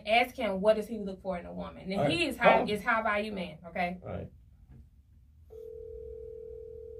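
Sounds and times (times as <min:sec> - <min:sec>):
speech: 0:00.1 - 0:04.4
steady telephone ringing tone: 0:05.5 - 0:06.9.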